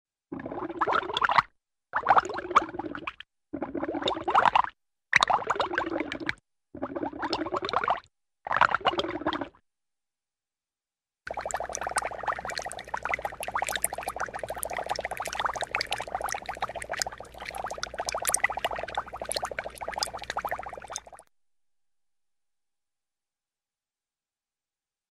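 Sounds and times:
small bubbles ascending and descending: 0:00.3 - 0:09.6, 0:11.3 - 0:21.3.

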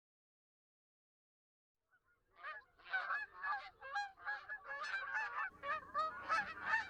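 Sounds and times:
Canada geese honking in chorus: 0:02.4 - 0:06.8.

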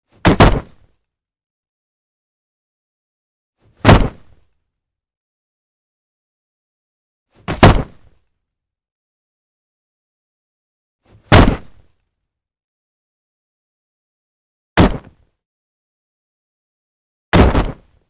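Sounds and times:
body slam fall: 0:00.2 - 0:00.9, 0:03.8 - 0:04.4, 0:07.4 - 0:08.1, 0:11.2 - 0:11.9, 0:14.8 - 0:15.2, 0:17.3 - 0:18.0.

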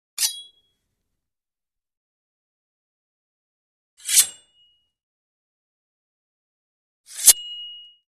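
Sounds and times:
light sword drawn from sheath: 0:00.2 - 0:00.6, 0:04.0 - 0:04.7, 0:07.1 - 0:07.8.

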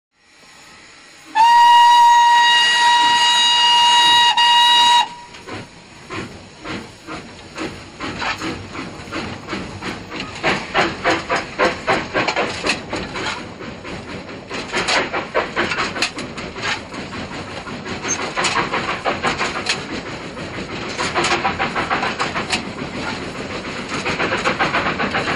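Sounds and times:
train starting: 0:00.2 - 0:25.3
steam train whistles: 0:01.1 - 0:05.8.

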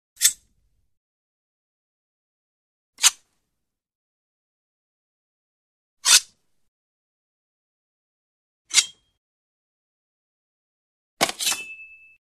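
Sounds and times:
knife drawn with a metal slide scrape: 0:08.7 - 0:09.1, 0:11.2 - 0:12.0.

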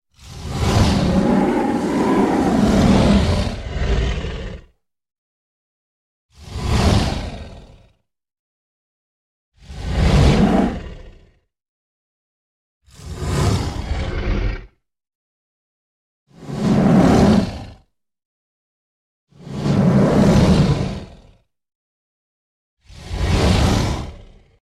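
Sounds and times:
multiple lion growls: 0:00.1 - 0:04.8, 0:06.4 - 0:08.1, 0:09.6 - 0:11.5, 0:12.9 - 0:14.8, 0:16.4 - 0:18.0, 0:19.4 - 0:21.5, 0:22.9 - 0:24.5.

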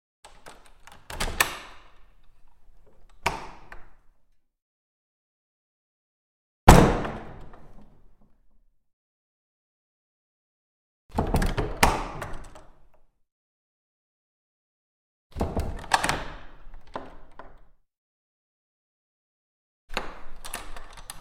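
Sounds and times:
wooden vestry door with lock: 0:00.2 - 0:04.4, 0:06.7 - 0:08.4, 0:11.1 - 0:13.1, 0:15.3 - 0:17.8, 0:19.9 - 0:21.1.

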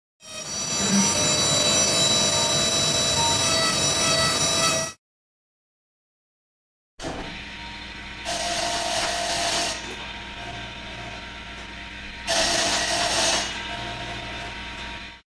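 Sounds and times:
grinder: 0:00.2 - 0:05.0, 0:08.2 - 0:15.2.

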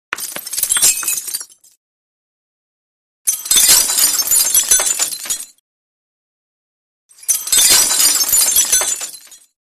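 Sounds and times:
light tinkling rain of falling glass: 0:00.2 - 0:01.8, 0:03.3 - 0:05.6, 0:07.1 - 0:09.6.

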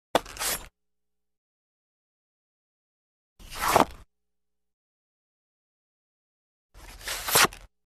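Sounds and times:
medium light sword drawn from scabbard: 0:00.2 - 0:00.7, 0:03.4 - 0:04.0, 0:06.8 - 0:07.7.

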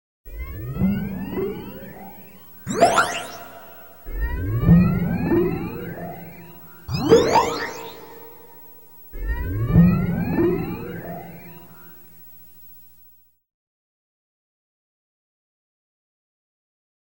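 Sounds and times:
synthesizer: 0:00.3 - 0:12.6.

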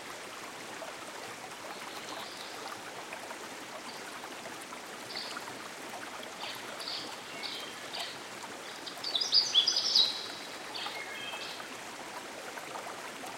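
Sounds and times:
babbling stream: 0:00.0 - 0:13.3
Canada warbler singing beside a stream: 0:06.4 - 0:11.7.

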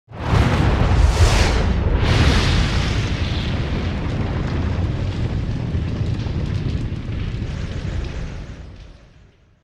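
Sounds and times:
big fire flares whooshing by: 0:00.1 - 0:09.0.

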